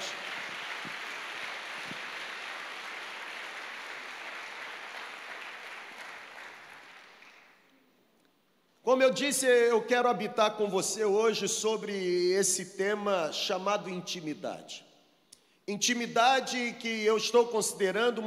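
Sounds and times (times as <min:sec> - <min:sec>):
audience applauding: 0:00.0 - 0:07.7
speech: 0:08.9 - 0:14.9, 0:15.7 - 0:18.2.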